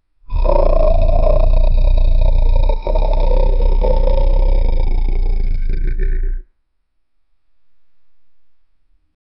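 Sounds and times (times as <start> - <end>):
ferocious supernatural demon laughter: 0.3 - 6.4.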